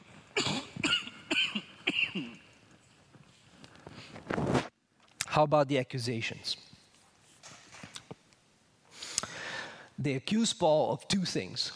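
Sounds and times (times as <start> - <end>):
man clearing throat: 0.3 - 2.5
man coughing with something caught in his throat: 0.3 - 2.5
speech: 5.4 - 6.7, 10.1 - 11.7.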